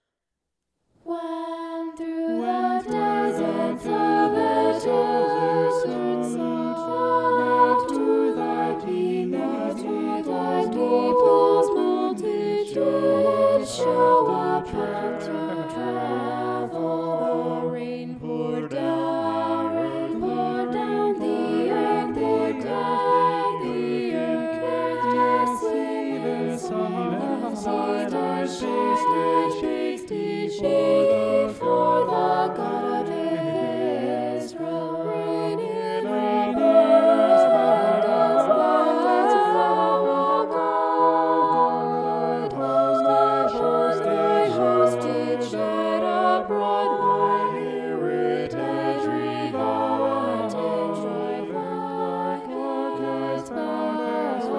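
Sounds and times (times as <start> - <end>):
polyphonic vocals: 1.0 - 54.5.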